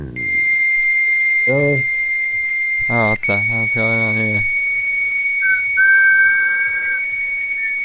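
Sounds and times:
person whistling a long held note: 0:00.2 - 0:04.2, 0:05.4 - 0:07.8.

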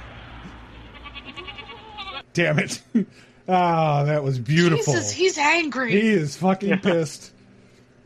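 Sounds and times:
goat bleating: 0:00.7 - 0:02.3
speech: 0:02.4 - 0:07.4.

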